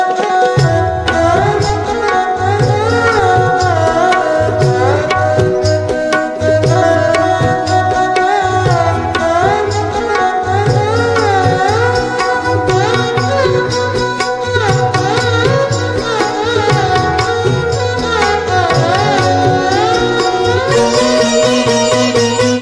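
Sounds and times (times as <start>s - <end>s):
violin instrumental ringtone: 0.1s - 22.6s.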